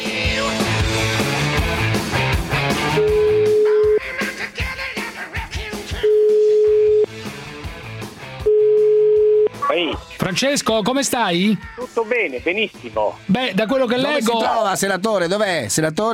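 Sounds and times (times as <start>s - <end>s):
loud music: 0.0s - 16.1s
telephone ringback tone as a call connects: 3.0s - 4.0s, 6.1s - 7.1s, 8.5s - 9.5s
speech: 10.4s - 16.1s.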